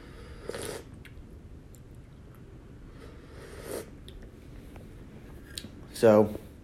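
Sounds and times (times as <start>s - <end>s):
soft steady hiss: 0.0s - 6.6s
quiet wet slurping sips of coffee: 0.4s - 0.9s, 3.4s - 4.0s
speech: 6.0s - 6.4s.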